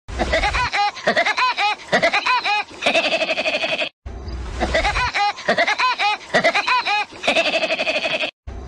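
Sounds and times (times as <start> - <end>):
cartoon woodpecker laugh ringtone: 0.2 - 3.9, 4.6 - 8.3.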